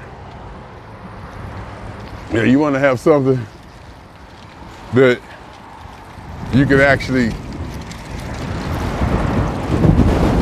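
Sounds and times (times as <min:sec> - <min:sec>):
speech: 0:02.3 - 0:03.6, 0:04.9 - 0:05.3, 0:06.5 - 0:07.4
strong wind buffeting the microphone: 0:06.0 - 0:10.4.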